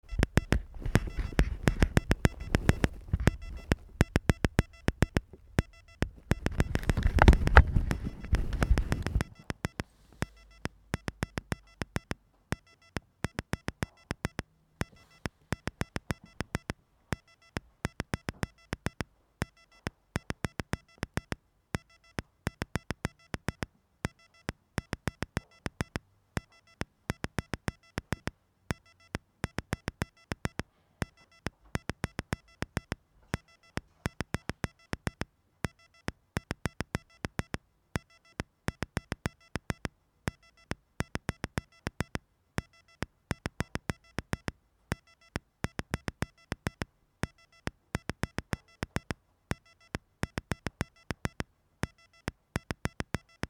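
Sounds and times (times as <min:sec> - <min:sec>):
morse code sequencer triggers: 0:00.0 - 0:53.4.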